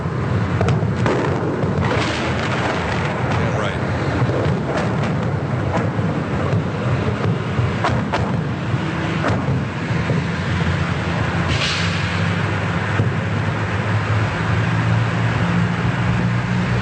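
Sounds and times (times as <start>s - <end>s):
continuous rumble of bombing of a house and pool house in Iraq: 0.0s - 11.4s
broadband road and wind noise: 0.0s - 16.8s
repeated sharp blasts of explosions: 0.4s - 13.3s.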